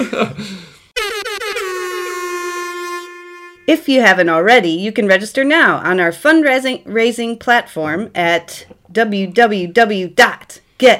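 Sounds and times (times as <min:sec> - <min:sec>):
speech: 0:00.0 - 0:00.7, 0:03.7 - 0:10.9
air horn blast: 0:01.0 - 0:03.8.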